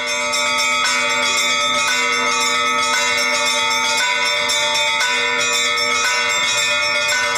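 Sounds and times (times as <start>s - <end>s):
medium church bells ringing: 0.0s - 7.3s.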